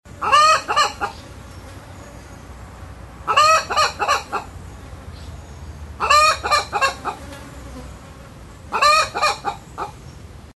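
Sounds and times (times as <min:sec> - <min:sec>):
village hen clucking: 0:00.2 - 0:01.2, 0:03.2 - 0:04.6, 0:06.0 - 0:07.3, 0:08.7 - 0:10.0.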